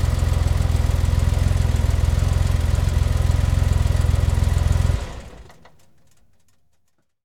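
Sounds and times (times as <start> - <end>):
Porsche 911T engine switching off: 0.0 - 5.6.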